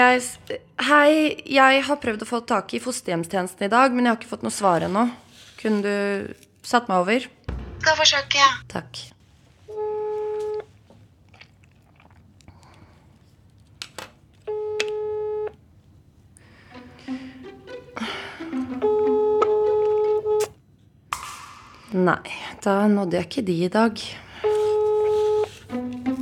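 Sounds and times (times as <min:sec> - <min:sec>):
speech: 0:00.0 - 0:09.8, 0:21.9 - 0:24.3
telephone ringback tone: 0:09.8 - 0:10.7, 0:14.5 - 0:15.6, 0:18.5 - 0:20.4, 0:24.4 - 0:25.5.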